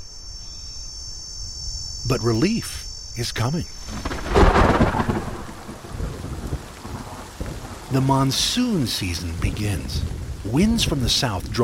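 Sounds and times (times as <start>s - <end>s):
cicada whining in midday heat in southeast Arizona: 0.0s - 6.4s
speech: 2.0s - 4.2s, 7.9s - 11.6s.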